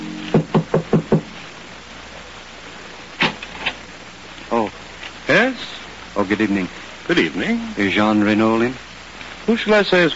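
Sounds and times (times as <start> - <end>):
knocks on a wooden door at night: 0.4 - 1.4
speech: 6.3 - 8.9, 9.5 - 10.1.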